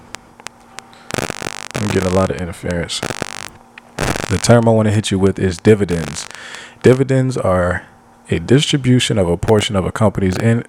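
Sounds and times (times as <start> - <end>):
sharp clicks: 0.0 - 0.2, 0.8 - 4.8, 5.6 - 7.0
steady low electrical hum: 0.0 - 7.2
crackling static: 0.0 - 7.4, 9.4 - 10.6
garbled distorted voice-like sounds: 1.1 - 4.8, 5.6 - 7.0
speech: 1.2 - 3.1, 4.3 - 10.6.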